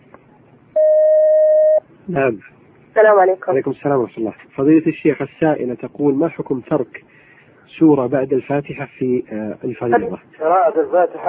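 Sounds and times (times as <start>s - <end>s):
faint hiss: 0.0s - 11.2s
telephone line tone as a caller connects to a call-in line: 0.8s - 1.8s
speech: 2.1s - 11.2s.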